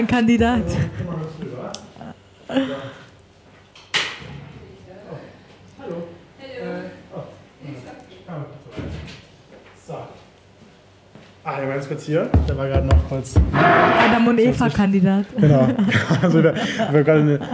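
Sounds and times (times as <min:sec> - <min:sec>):
speech: 0:00.0 - 0:01.0, 0:02.5 - 0:03.0, 0:11.4 - 0:17.5
laughter: 0:00.4 - 0:03.1, 0:15.3 - 0:17.5
sharp knock on a door: 0:12.4 - 0:13.7.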